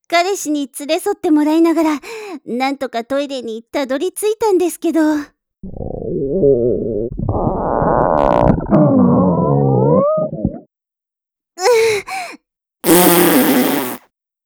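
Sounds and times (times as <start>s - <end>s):
speech: 0.1s - 9.2s
fart: 5.6s - 10.7s, 12.8s - 14.0s.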